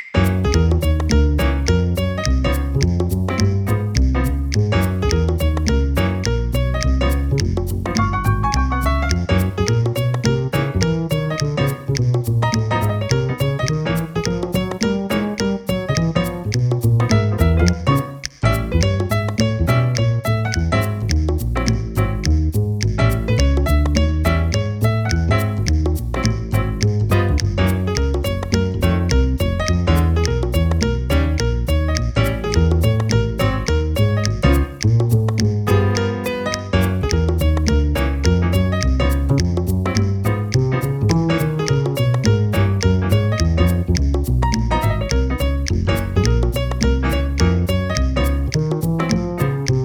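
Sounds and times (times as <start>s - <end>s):
drumless jazz music: 0.1s - 49.8s.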